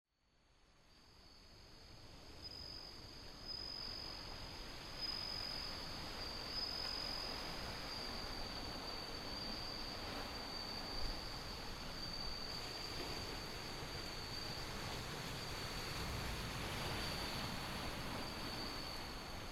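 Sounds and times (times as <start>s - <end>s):
wind: 0.1s - 19.5s
bell cricket singing a sustained high ringing tone: 2.4s - 14.9s, 16.9s - 19.5s
ocean surf: 3.6s - 19.5s.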